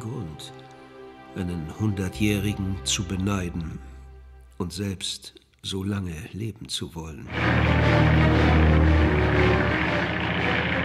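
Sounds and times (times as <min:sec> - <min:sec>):
speech: 0:01.3 - 0:03.9, 0:04.6 - 0:09.9
propeller aircraft engines droning while coming in to land: 0:07.3 - 0:10.8.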